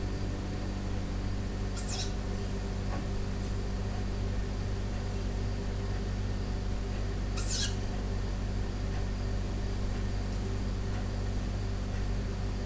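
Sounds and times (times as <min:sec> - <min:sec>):
low electrical hum of a fridge: 0:00.0 - 0:12.6
owl call indoors: 0:01.8 - 0:02.2, 0:07.4 - 0:07.8.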